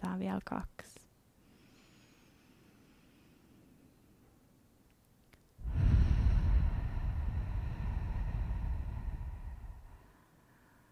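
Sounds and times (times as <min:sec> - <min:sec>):
speech: 0:00.2 - 0:01.0
deep slow breath in and out during a guided breathing exercise: 0:01.4 - 0:04.3, 0:05.6 - 0:10.9.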